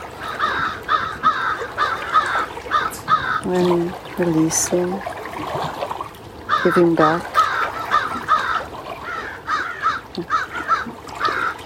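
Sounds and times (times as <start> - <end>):
crows cawing: 0.0 - 3.5, 6.5 - 11.6
speech: 3.5 - 5.5, 6.6 - 7.4.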